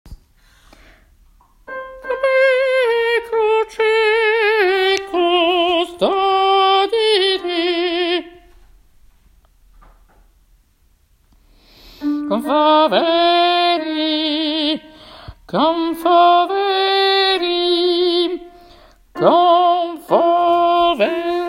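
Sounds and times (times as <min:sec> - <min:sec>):
alto voice singing: 0:01.7 - 0:08.6, 0:12.0 - 0:21.4.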